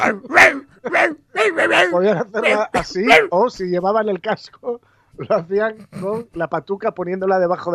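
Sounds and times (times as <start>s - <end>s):
person imitating a dog barking a tune: 0.0s - 3.4s
speech: 0.0s - 7.7s.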